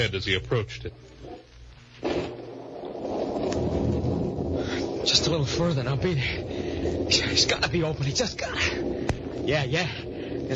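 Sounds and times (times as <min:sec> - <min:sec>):
speech: 0:00.0 - 0:01.2, 0:05.0 - 0:10.5
low stormy rumble: 0:02.3 - 0:10.5
steady heavy rain: 0:02.3 - 0:10.5.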